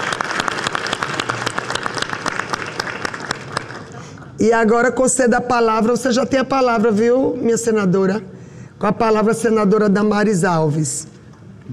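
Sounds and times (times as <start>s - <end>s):
room full of people clapping: 0.0s - 4.1s
speech: 4.4s - 11.7s.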